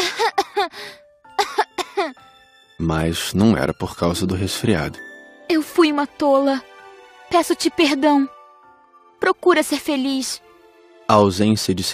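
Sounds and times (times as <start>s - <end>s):
small delicate voice coughing: 0.0s - 0.7s, 1.4s - 2.2s
speech: 2.8s - 6.7s, 7.3s - 8.4s, 9.2s - 10.4s, 11.1s - 11.9s.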